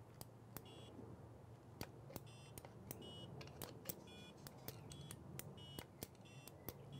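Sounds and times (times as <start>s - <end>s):
electronic beeping tones from microcontroller board joystick presses: 0.6s - 0.9s, 2.2s - 3.3s, 4.0s - 6.9s
sharp plastic clicks: 1.8s - 6.9s.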